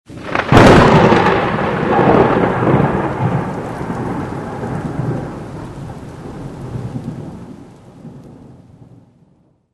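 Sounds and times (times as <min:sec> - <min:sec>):
lightning: 0:00.1 - 0:09.6.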